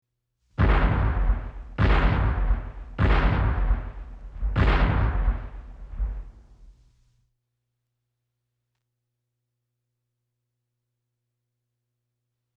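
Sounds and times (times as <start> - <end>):
cannon shots: 0.6 - 6.8.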